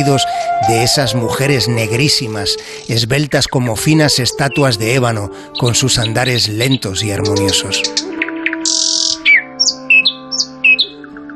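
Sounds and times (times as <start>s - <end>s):
speech: 0.0s - 8.2s
birds chirping and squawking in treetops: 0.0s - 11.3s.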